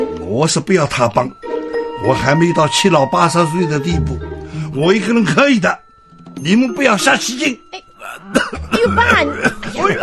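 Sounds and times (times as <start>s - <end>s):
speech: 0.3s - 1.4s, 2.0s - 5.8s, 6.4s - 10.0s
man coughing and clearing his throat: 8.0s - 10.0s.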